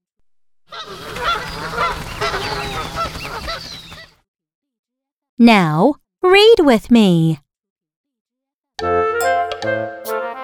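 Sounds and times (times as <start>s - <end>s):
flock of geese honking: 0.7s - 4.1s
speech: 5.4s - 7.4s.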